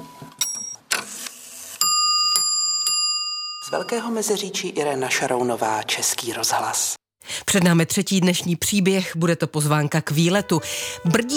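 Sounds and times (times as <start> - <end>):
small hammer striking a bright clock bell chime: 1.8 - 4.1
speech: 3.7 - 11.3.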